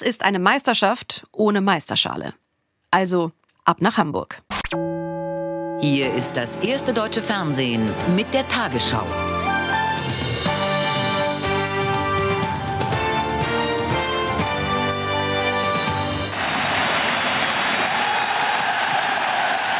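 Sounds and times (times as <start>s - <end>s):
speech: 0.0s - 4.9s, 5.8s - 9.4s
bright tonal music: 4.8s - 16.2s
stadium crowd cheering and applauding for football champions in Hamburg: 16.2s - 19.7s.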